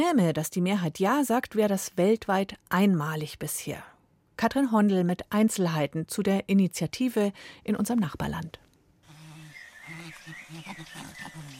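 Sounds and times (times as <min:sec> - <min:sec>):
speech: 0:00.0 - 0:08.6, 0:10.3 - 0:11.5
bird chatter in the rainforest: 0:09.1 - 0:11.5
chimpanzees hooting in the rainforest of Tanzania: 0:09.1 - 0:11.5.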